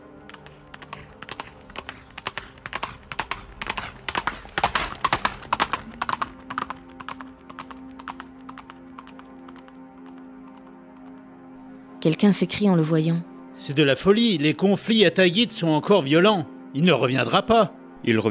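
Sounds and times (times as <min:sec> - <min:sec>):
horse hooves clip-clopping: 0:00.0 - 0:11.3
speech: 0:12.0 - 0:18.2.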